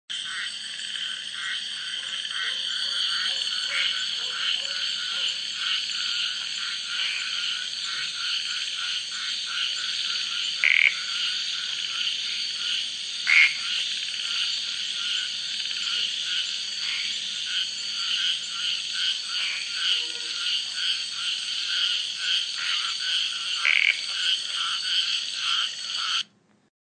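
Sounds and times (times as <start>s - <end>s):
Polypedates frog calling: 0.1s - 26.3s.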